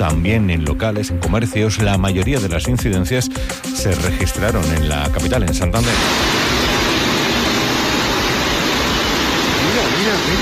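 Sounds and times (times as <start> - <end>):
speech: 0.0 - 6.5
floodwater rushing down a city street after heavy rain in Santander, Spain: 5.9 - 10.3.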